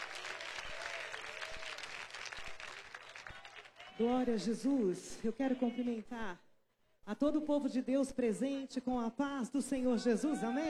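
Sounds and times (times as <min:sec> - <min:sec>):
audience applauding: 0:00.0 - 0:04.5
speech: 0:04.0 - 0:06.4, 0:07.1 - 0:10.6.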